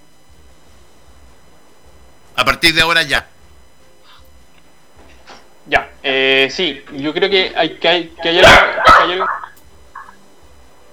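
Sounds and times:
speech: 0:02.4 - 0:03.3, 0:05.7 - 0:09.4
dog barking with whiny trailing tone: 0:08.6 - 0:09.4.

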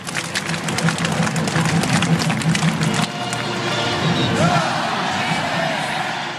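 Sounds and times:
rhythmic clapping or stomping: 0:00.0 - 0:04.6
large football stadium crowd roaring and cheering: 0:00.0 - 0:06.3.

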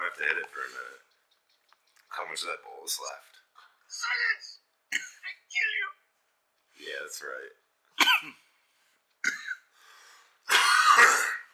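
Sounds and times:
speech: 0:00.1 - 0:01.1, 0:02.1 - 0:05.9, 0:06.8 - 0:08.4
harsh raspy coughing: 0:08.0 - 0:08.4, 0:10.5 - 0:11.5
wheezy breath: 0:09.7 - 0:10.4.

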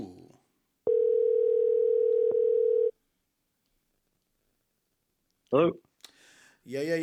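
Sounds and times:
telephone dial tone while placing call: 0:00.9 - 0:02.9
speech: 0:05.5 - 0:07.0.

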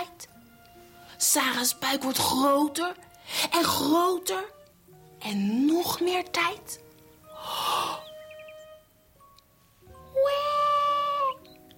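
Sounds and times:
speech: 0:01.3 - 0:04.6, 0:05.2 - 0:06.8
newborn baby boy crying from a tent: 0:10.1 - 0:11.5.

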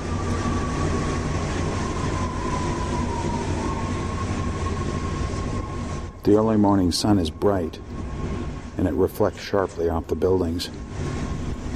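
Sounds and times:
Metro Red Line subway train running on rails in Washington DC: 0:00.0 - 0:11.7
thin high whine of subway train wheels: 0:00.0 - 0:11.7
speech: 0:06.2 - 0:07.9, 0:08.8 - 0:11.2.

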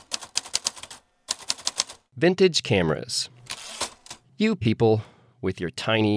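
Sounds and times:
manual typewriter keystrokes typing a poem: 0:00.0 - 0:02.0, 0:03.5 - 0:04.2
speech: 0:02.2 - 0:03.4, 0:04.4 - 0:06.1.

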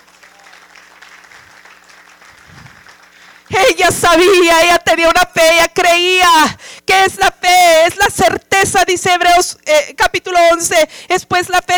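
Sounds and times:
church audience applauding: 0:00.0 - 0:03.6
speech: 0:03.8 - 0:11.7.

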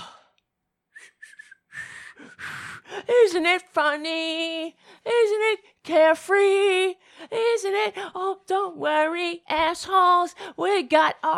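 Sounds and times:
breathy failed whistling attempt: 0:00.9 - 0:02.9
speech: 0:03.1 - 0:11.3.

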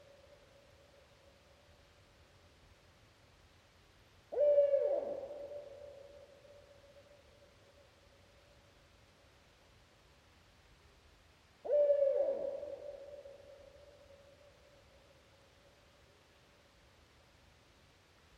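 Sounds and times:
faint steady hum: 0:00.0 - 0:18.3
Barred Owl Strix varia hooting in a temperate deciduous forest: 0:04.3 - 0:06.7, 0:11.6 - 0:14.3.

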